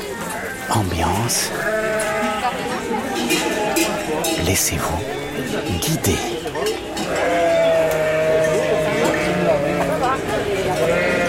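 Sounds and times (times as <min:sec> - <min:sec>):
large flock of ewes bleating outdoors on the cirque de Campulse, Ariège: 0:00.5 - 0:02.6, 0:07.1 - 0:09.9, 0:10.8 - 0:11.2
speech: 0:00.7 - 0:07.7.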